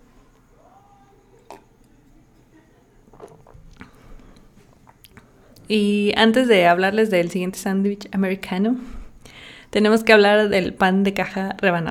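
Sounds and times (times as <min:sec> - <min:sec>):
person sipping tea: 0:01.3 - 0:02.0, 0:03.1 - 0:05.7
speech: 0:05.7 - 0:09.0, 0:09.7 - 0:11.8.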